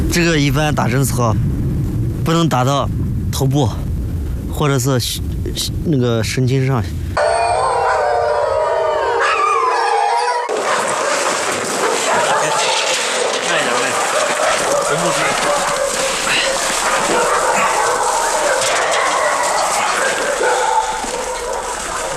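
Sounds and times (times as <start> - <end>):
speech: 0.1 - 1.5, 2.3 - 3.9, 4.6 - 7.3
young wolves howling and yipping: 7.2 - 22.1.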